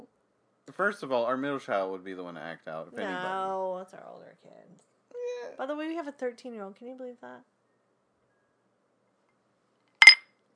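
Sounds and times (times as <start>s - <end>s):
speech: 0.7s - 7.5s
glasses clinking together in a toast: 10.0s - 10.2s.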